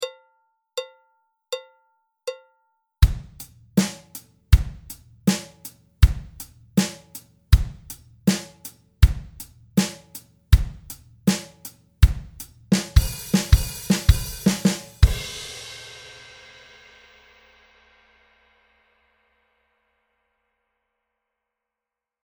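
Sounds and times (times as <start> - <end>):
slow drum beat: 3.0 - 16.8.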